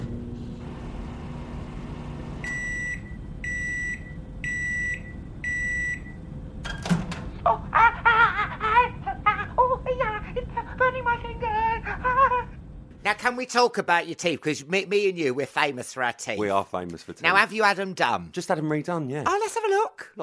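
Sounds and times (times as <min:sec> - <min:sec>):
microwave oven humming: 0:00.0 - 0:13.0
microwave door opening clunk: 0:06.6 - 0:07.4
bursts of laughter: 0:07.4 - 0:09.7
speech: 0:13.2 - 0:20.2.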